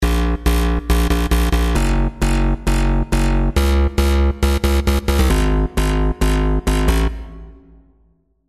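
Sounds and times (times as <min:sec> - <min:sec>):
compressed bounce bass: 0:00.0 - 0:07.2.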